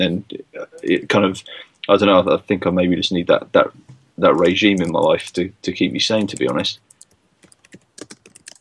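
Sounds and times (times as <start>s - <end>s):
speech: 0.0s - 6.9s
typing on a computer keyboard: 4.4s - 5.4s, 6.2s - 8.5s.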